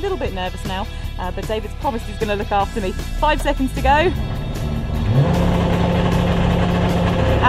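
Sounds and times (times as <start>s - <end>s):
speech: 0.0s - 4.5s
car engine accelerating on a race track: 2.7s - 7.4s.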